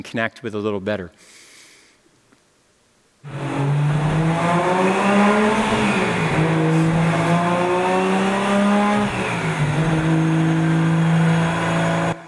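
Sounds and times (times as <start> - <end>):
speech: 0.0 - 1.4
car engine revving: 3.2 - 12.2.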